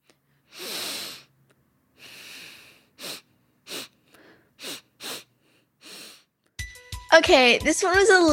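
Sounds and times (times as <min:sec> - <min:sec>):
person sniffing: 0:00.0 - 0:06.3
speech: 0:07.2 - 0:08.3.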